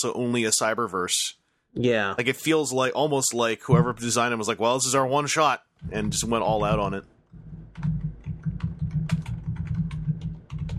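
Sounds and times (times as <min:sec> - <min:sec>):
speech: 0:00.0 - 0:08.0
steady low hum: 0:03.7 - 0:04.3, 0:05.8 - 0:10.7
rapid typing on a computer keyboard: 0:07.8 - 0:10.7.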